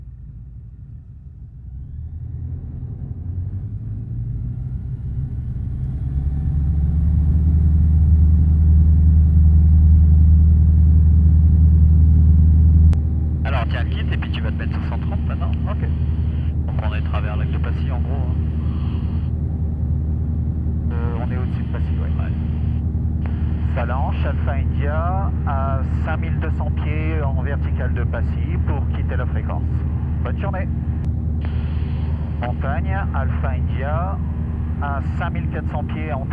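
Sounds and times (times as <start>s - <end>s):
light aircraft engine roaring during takeoff: 0.0s - 36.3s
narrow-band radio voices: 13.5s - 19.3s, 20.9s - 36.3s
speech: 14.3s - 16.0s, 23.8s - 30.9s, 32.4s - 36.3s.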